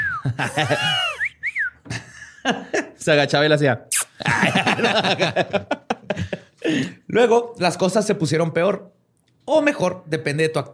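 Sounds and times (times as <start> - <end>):
person imitating a mongoose's whistle: 0.0 - 0.3, 0.9 - 1.9
speech: 0.2 - 1.1, 2.4 - 5.8, 6.7 - 10.7
laughter: 0.2 - 1.3, 4.2 - 6.6.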